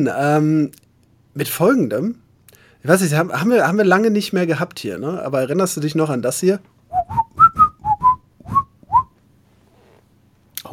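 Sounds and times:
speech: 0:00.0 - 0:00.8, 0:01.4 - 0:02.2, 0:02.8 - 0:07.3
whistled segment intro jingle: 0:06.9 - 0:09.1.

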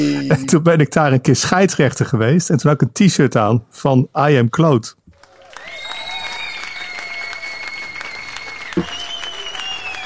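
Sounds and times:
speech: 0:00.0 - 0:05.0, 0:08.8 - 0:09.0
small crowd applauding: 0:05.2 - 0:10.0
faint whistle-like tone: 0:07.0 - 0:10.0.

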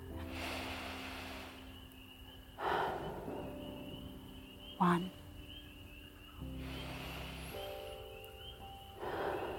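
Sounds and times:
slow deep breaths: 0:00.1 - 0:04.3, 0:06.3 - 0:09.5
speech: 0:04.8 - 0:05.2.

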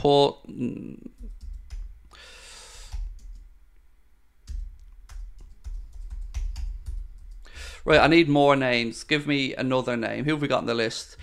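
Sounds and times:
speech: 0:00.0 - 0:01.1, 0:07.8 - 0:11.2
keystrokes on a computer keyboard as names are typed: 0:01.2 - 0:01.9, 0:02.9 - 0:03.5, 0:04.5 - 0:07.5.

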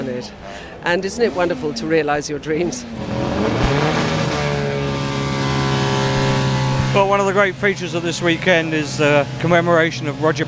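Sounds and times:
speech: 0:00.0 - 0:03.6, 0:06.9 - 0:10.4
race car engines rumbling and revving going out onto the track: 0:00.0 - 0:10.4.

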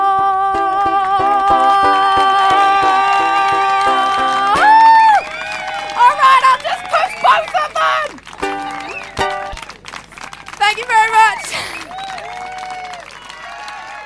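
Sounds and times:
sung melody: 0:00.0 - 0:05.0, 0:08.4 - 0:09.6
people clapping: 0:00.8 - 0:14.0
crowd cheering and excited shouting: 0:02.2 - 0:09.6, 0:10.2 - 0:14.0.

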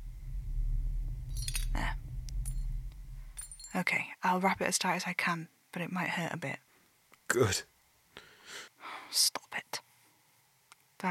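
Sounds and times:
low steady hum: 0:00.0 - 0:04.6
small pieces of glass clinking and scraping: 0:01.4 - 0:01.9, 0:03.4 - 0:03.7
speech: 0:03.8 - 0:06.6, 0:07.3 - 0:07.7, 0:08.5 - 0:09.3.

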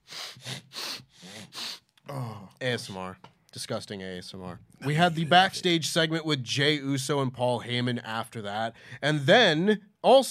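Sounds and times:
nasal sniffles with breathy snorting: 0:00.0 - 0:01.9
speech: 0:02.1 - 0:10.2.

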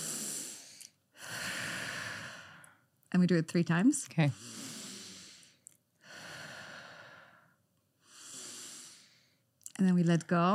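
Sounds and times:
people in a plane breathing in sync: 0:00.0 - 0:02.9, 0:04.4 - 0:09.5
speech: 0:03.1 - 0:04.6, 0:09.8 - 0:10.5.

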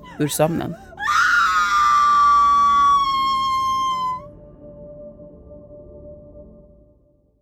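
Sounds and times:
speech: 0:00.2 - 0:00.9
loud piercing terrified roaring scream: 0:01.0 - 0:04.2.

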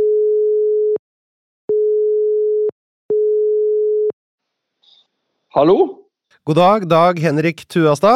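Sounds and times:
telephone ringing tone on an outgoing call: 0:00.0 - 0:01.0, 0:01.7 - 0:04.1
speech: 0:05.5 - 0:08.1.

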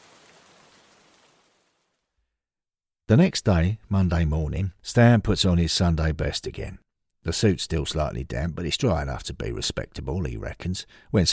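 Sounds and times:
rain falling on a grave and its headstone: 0:00.0 - 0:02.0
speech: 0:03.1 - 0:11.3.

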